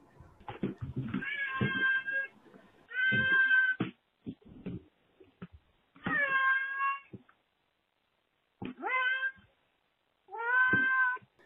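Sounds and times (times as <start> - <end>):
cat meowing over a phone line: 1.1 - 2.3, 2.9 - 3.8, 6.0 - 7.2, 8.7 - 9.5, 10.3 - 11.3.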